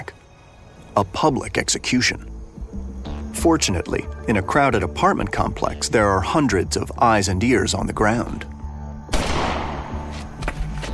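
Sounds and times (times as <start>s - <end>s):
speech: 1.0s - 2.3s, 3.4s - 8.5s
single loud gunshot with echo: 9.1s - 10.1s.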